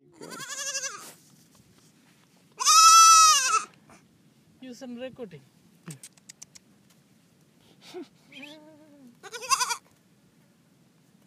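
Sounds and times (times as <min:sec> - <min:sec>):
baby goat bleating in the Great Thar Desert, India: 0:00.1 - 0:01.2, 0:02.6 - 0:03.7, 0:08.4 - 0:09.9
speech: 0:04.8 - 0:06.1.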